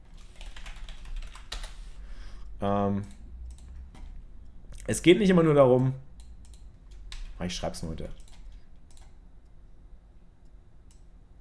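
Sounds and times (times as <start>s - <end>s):
quiet typing on a computer keyboard while saving a file: 0.2s - 1.8s, 6.2s - 7.4s, 8.2s - 9.2s
speech: 2.6s - 3.2s, 4.9s - 6.1s, 7.4s - 8.2s.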